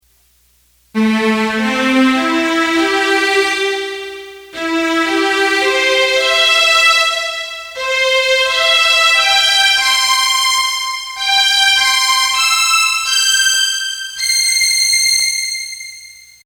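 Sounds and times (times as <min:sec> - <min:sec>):
orchestral music on a keyboard: 0:01.0 - 0:16.1.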